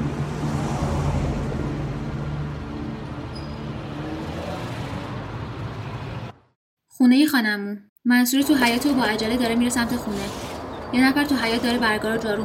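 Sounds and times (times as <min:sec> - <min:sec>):
car engine pulling away and driving off: 0:00.0 - 0:06.5
steady road noise: 0:00.0 - 0:06.6, 0:08.4 - 0:12.4
speech: 0:07.0 - 0:12.4.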